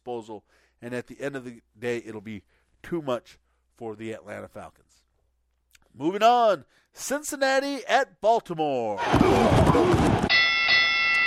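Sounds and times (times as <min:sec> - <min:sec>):
speech: 0:00.1 - 0:05.0, 0:06.0 - 0:10.4
bell rung on a sports talk show: 0:10.3 - 0:11.2.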